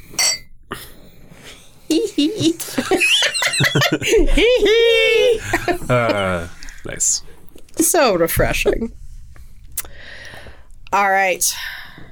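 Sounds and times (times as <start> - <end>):
glasses clinking in a toast with a mixed drink: 0.0 - 0.5
women laughing and giggling together: 1.9 - 6.5
speech: 1.9 - 9.0, 10.9 - 11.8.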